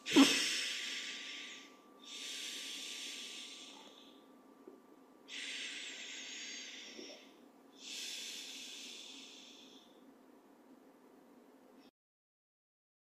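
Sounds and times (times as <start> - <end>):
person taking slow deep breaths in a guided breathing exercise: 0.0 - 4.3, 5.3 - 10.0
faint steady low hum: 0.0 - 11.9.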